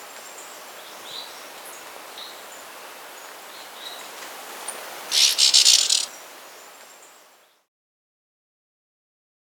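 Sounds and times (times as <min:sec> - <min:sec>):
White-sided flowerpiercer stuttering trill in Ecuador: 0:05.1 - 0:06.1
faint chirps: 0:05.1 - 0:06.2.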